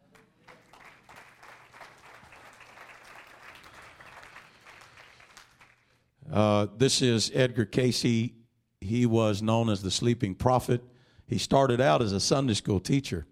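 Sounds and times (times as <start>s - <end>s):
room full of people clapping: 0.0s - 6.1s
speech: 6.3s - 13.3s.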